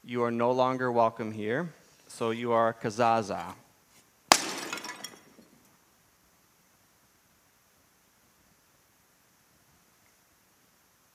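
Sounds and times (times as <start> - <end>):
speech: 0.1 - 3.6
clay jar being smashed: 4.3 - 5.6
clay jar fragments scattering: 4.3 - 5.6.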